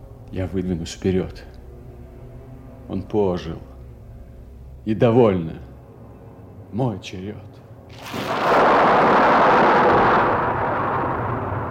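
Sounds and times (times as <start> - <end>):
speech: 0.3 - 1.6, 2.9 - 3.7, 4.8 - 5.7, 6.7 - 9.2
heavy roll of thunder in a storm: 7.9 - 11.6.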